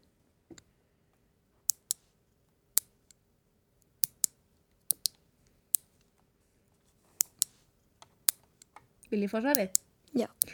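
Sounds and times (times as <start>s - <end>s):
toenails being clipped: 4.0s - 4.3s, 7.2s - 7.5s, 9.5s - 10.5s
speech: 9.1s - 10.5s.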